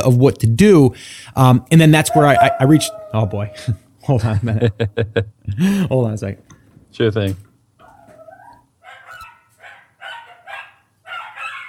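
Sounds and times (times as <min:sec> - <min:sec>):
speech: 0:00.0 - 0:07.5
dog whining yowl: 0:02.0 - 0:03.8, 0:07.8 - 0:09.3
dog barking at the mailman: 0:02.1 - 0:03.7, 0:07.8 - 0:11.6
laughter: 0:04.2 - 0:05.7.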